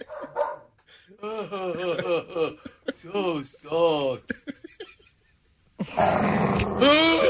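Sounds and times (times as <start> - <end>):
laughter: 0.0 - 0.5, 1.2 - 6.0, 6.8 - 7.2
dog barking: 0.0 - 0.7
speech: 1.2 - 3.8
rough growl ending in a raspy snarl: 5.8 - 7.2.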